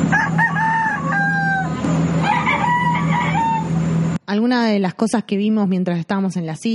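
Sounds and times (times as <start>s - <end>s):
rooster crowing on a boat: 0.0s - 4.0s
low mechanical drone: 0.0s - 4.5s
speech: 4.3s - 6.7s.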